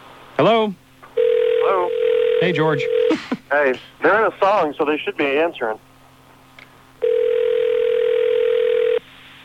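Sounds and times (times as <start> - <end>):
speech: 0.4 - 0.8, 2.4 - 5.9
telephone dial tone on an outgoing call from a phone bank: 1.2 - 3.1, 7.0 - 9.0.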